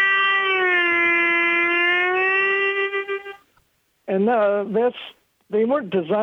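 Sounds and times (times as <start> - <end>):
sustained harmonica note bent lower by reshaping the inside of the mouth: 0.0 - 3.5
speech: 4.2 - 6.2.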